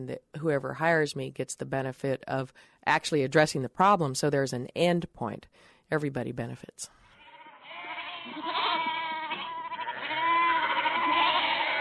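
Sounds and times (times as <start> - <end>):
speech: 0.0 - 7.0
several goats bleating: 7.2 - 11.8.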